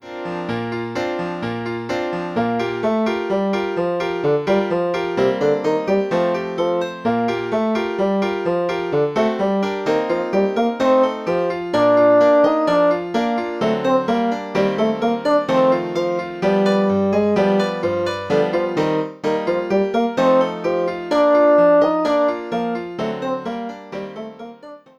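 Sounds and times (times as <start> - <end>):
piano: 0.0 - 24.9
bassoon: 8.9 - 22.9.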